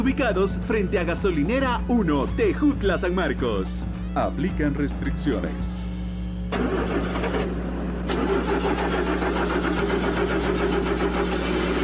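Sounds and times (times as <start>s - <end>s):
speech: 0.0s - 5.9s, 6.6s - 11.8s
car engine with starter trouble cranking and sputtering: 6.5s - 11.8s.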